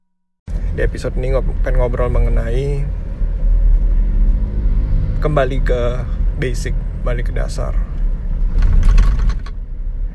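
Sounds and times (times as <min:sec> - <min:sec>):
low engine rumble inside a moving car: 0:00.5 - 0:10.1
speech: 0:00.8 - 0:03.0, 0:05.2 - 0:07.9
clinking rattling noise inside a car: 0:08.5 - 0:09.6.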